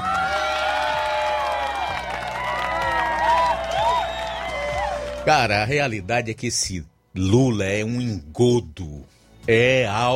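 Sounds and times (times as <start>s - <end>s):
whoops: 0.0s - 5.2s
crowd applauding and cheering: 0.0s - 5.7s
shrill whistles: 2.9s - 5.2s
speech: 5.3s - 10.1s.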